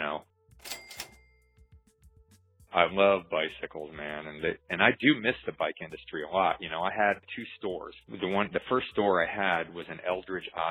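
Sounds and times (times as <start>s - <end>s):
cash register ringing with bell tone: 0.6s - 1.5s
speech: 2.8s - 10.6s.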